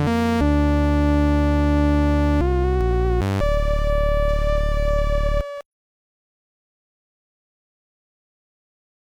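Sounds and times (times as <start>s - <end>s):
sawtooth synth tone: 0.1s - 5.6s.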